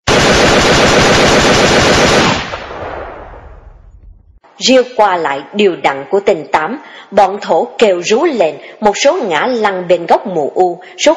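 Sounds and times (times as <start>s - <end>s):
burst of automatic gunfire: 0.0s - 3.4s
echo and rumble of gunfire: 2.2s - 4.4s
speech: 4.6s - 11.1s.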